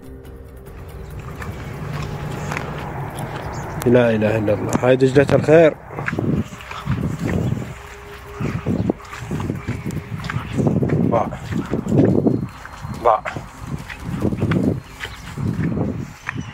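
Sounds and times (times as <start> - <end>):
man's footsteps crunching across dry drought-cracked ground in Iraq: 0.7 - 16.5
speech: 3.8 - 6.2.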